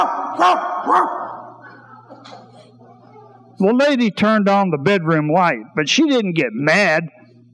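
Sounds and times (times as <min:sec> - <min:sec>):
speech: 0:00.0 - 0:01.2, 0:03.6 - 0:07.2
dog barking loudly: 0:00.0 - 0:01.6.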